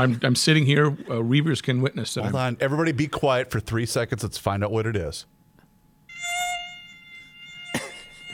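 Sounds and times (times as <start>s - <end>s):
speech: 0.0s - 5.4s
mosquito whining in a room: 6.1s - 8.3s.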